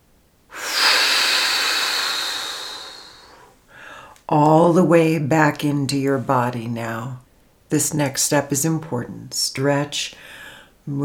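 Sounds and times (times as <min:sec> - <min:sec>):
big breath drawn in and blown out: 0:00.5 - 0:04.2
speech: 0:04.3 - 0:11.0.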